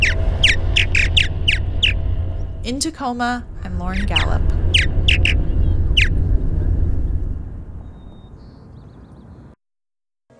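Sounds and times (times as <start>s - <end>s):
purple martin calling: 0.0s - 9.5s
low constant rumble: 0.0s - 9.6s
speech: 2.7s - 5.0s.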